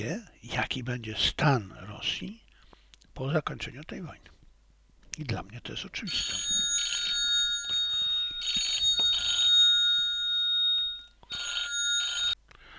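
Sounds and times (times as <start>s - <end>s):
speech: 0.0s - 2.4s, 3.2s - 4.3s, 5.2s - 6.7s
telephone ringing with trilling electronic tones: 6.0s - 12.4s.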